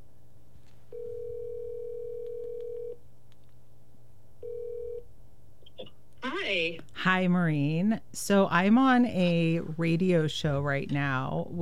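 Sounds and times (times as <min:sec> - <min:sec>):
telephone ringback tone through the earpiece: 0:01.0 - 0:03.0, 0:04.4 - 0:05.0
speech: 0:06.4 - 0:11.5.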